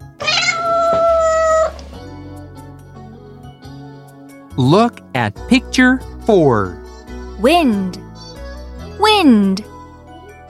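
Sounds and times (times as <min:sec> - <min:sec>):
cat meowing: 0:00.2 - 0:01.8
speech: 0:04.6 - 0:06.8, 0:07.4 - 0:08.0, 0:09.2 - 0:09.7.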